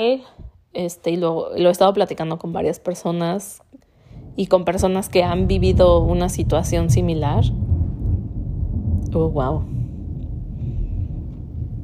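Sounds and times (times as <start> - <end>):
speech: 0.0 - 3.8, 4.4 - 7.6, 9.1 - 9.8
deep rumble of thunder from a strong storm: 4.0 - 11.8.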